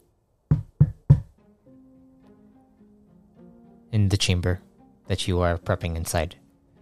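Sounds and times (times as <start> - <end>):
firm knocks on a wooden door: 0.5 - 1.3
speech: 4.0 - 6.4.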